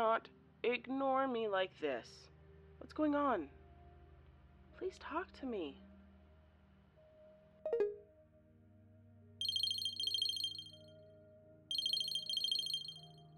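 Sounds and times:
speech: 0.0s - 3.6s, 4.8s - 5.9s
telephone ringing in trilling electronic bursts: 9.4s - 10.8s, 11.7s - 13.1s.

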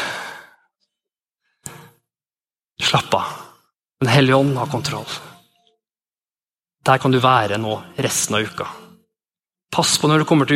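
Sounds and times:
long deep breath in and out: 0.0s - 0.8s
speech: 4.0s - 5.3s, 6.8s - 8.8s, 9.7s - 10.5s.

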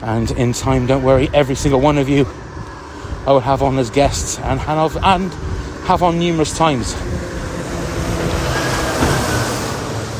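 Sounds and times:
speech: 0.0s - 2.4s, 3.2s - 7.3s
big lorry driving past on road: 5.7s - 10.1s.

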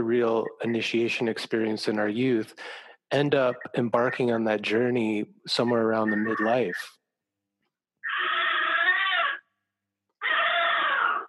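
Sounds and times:
speech: 0.0s - 7.0s
old cat yowling loudly: 8.0s - 9.4s, 10.2s - 11.2s.

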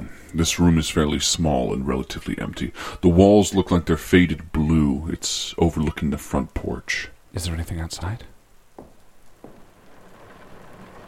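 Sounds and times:
rain falling outside: 0.1s - 11.0s
speech: 0.3s - 8.3s
soft low thumps: 8.7s - 9.7s.

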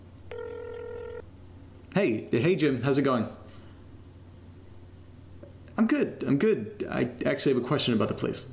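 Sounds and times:
electronic ringback tone over a phone line: 0.3s - 1.2s
speech: 2.0s - 3.4s, 5.8s - 8.5s.

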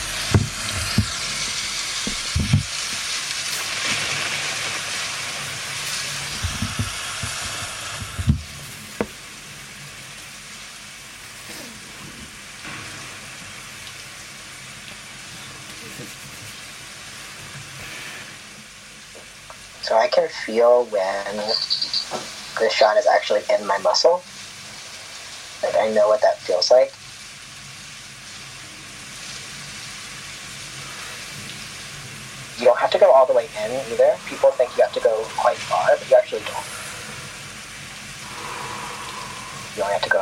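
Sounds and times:
steady hiss of rain sounds played from a relaxation app: 0.0s - 40.2s
brief person's voice: 19.8s - 24.2s, 25.6s - 27.0s, 32.6s - 36.8s, 39.0s - 40.2s
speech: 20.2s - 21.8s, 22.6s - 24.3s, 25.6s - 27.0s, 33.1s - 36.7s, 39.8s - 40.2s.

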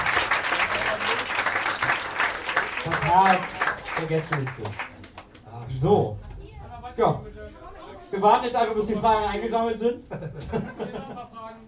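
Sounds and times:
live crowd applauding: 0.0s - 5.7s
speech: 3.0s - 4.8s, 5.7s - 6.3s, 7.0s - 7.3s, 8.1s - 10.7s
laughter: 10.0s - 11.4s.

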